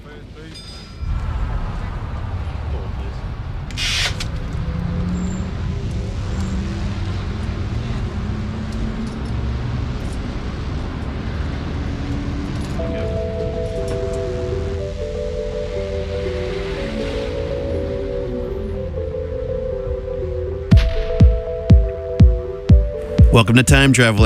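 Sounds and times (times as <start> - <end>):
heavy double-decker bus engines rumbling in London rush hour: 0.0 - 20.7, 21.4 - 24.2
busy city street traffic in London rush hour: 0.0 - 24.2
bus air brakes hissing: 3.8 - 4.2
speech: 23.4 - 24.2.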